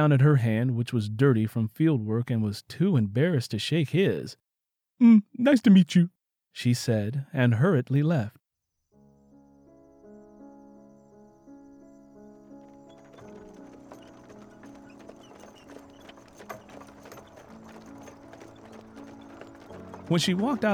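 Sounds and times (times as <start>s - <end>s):
speech: 0.0s - 4.4s, 5.0s - 8.4s, 20.1s - 20.7s
soft sustained music: 9.0s - 20.7s
horse hooves clip-clopping pulling a wagon along a road: 12.2s - 20.7s
wagon with a coffin rattling: 12.2s - 20.7s.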